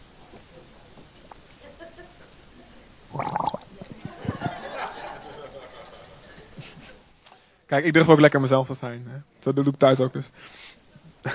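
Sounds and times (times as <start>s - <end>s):
person sipping water: 3.1s - 4.0s
soft gulps: 3.1s - 4.4s
laughter: 3.8s - 7.0s, 11.0s - 11.3s
speech: 7.7s - 10.6s.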